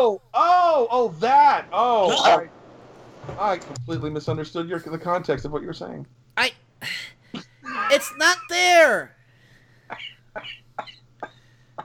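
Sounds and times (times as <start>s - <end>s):
speech: 0.0s - 2.6s, 3.2s - 9.2s, 9.9s - 11.0s
person coughing sharply: 9.9s - 11.8s.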